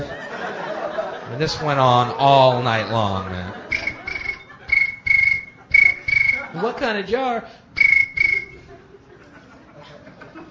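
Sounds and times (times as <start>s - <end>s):
laughter: 0.0s - 6.8s, 8.2s - 10.5s
speech: 1.3s - 3.6s, 6.6s - 7.6s
crickets chirping: 3.7s - 6.4s.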